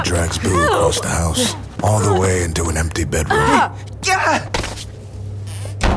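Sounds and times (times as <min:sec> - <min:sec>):
brief strained vocal cry: 0:00.0 - 0:02.4
speech: 0:00.0 - 0:04.6
low steady hum: 0:00.0 - 0:05.9
bedroom door slamming shut with a heavy thud: 0:05.8 - 0:05.9.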